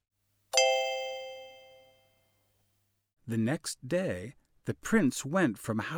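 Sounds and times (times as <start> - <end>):
clock striking midnight chime: 0.6 - 1.9
speech: 3.3 - 5.9.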